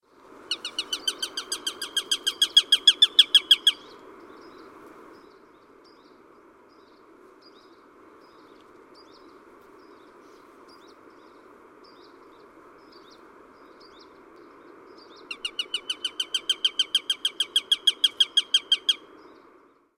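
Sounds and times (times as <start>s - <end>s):
Eurasian sparrowhawk calling in forest: 0.5s - 4.6s, 15.2s - 19.0s.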